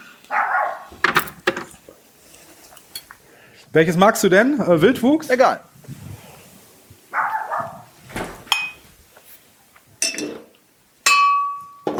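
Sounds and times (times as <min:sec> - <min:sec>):
neighbour's dogs barking outside: 0:00.0 - 0:01.2, 0:07.1 - 0:08.1
speech: 0:03.7 - 0:05.7
sharp glassy clinks: 0:08.5 - 0:08.9, 0:11.1 - 0:11.8.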